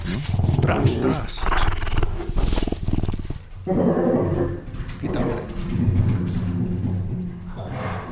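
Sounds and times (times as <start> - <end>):
female Iberian lynx growling and snarling at its cub: 0.0 - 5.6
throaty rumbling roars of female Iberian lynx: 0.3 - 8.1.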